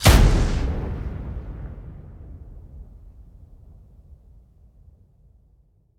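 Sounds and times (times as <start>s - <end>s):
AMR weapon firing: 0.0s - 2.4s.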